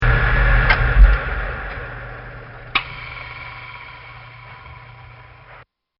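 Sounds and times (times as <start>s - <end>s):
furnace stopping: 0.0s - 5.6s.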